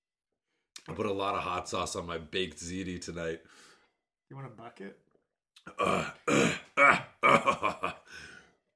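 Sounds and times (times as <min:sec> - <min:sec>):
speech: 0:00.9 - 0:03.7, 0:04.3 - 0:08.0
person belching: 0:05.6 - 0:08.0.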